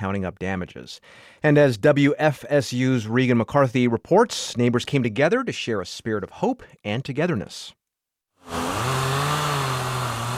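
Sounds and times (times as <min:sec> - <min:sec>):
speech: 0:00.0 - 0:07.8
chainsaw cutting storm debris: 0:08.4 - 0:10.3.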